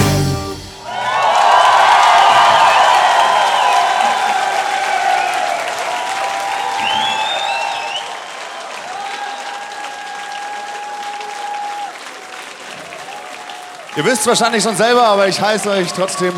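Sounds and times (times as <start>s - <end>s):
concert crowd cheering: 0.0s - 16.3s
live concert audience applauding: 0.0s - 16.3s
whistles from concert crowd: 2.3s - 3.9s, 6.6s - 8.6s
speech: 14.0s - 16.3s.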